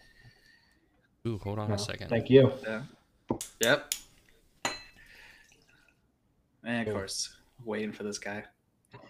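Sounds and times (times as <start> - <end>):
speech: 1.2 - 3.0, 3.6 - 4.0, 6.6 - 9.0
glass clink: 4.6 - 5.1
drink being poured into a glass: 4.9 - 6.0.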